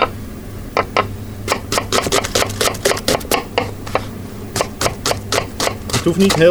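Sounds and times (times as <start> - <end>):
low hum: 0.0 - 6.5
knife chopping leek, carrot and celery on a cutting board: 1.7 - 3.5, 4.6 - 6.5
speech: 6.0 - 6.5.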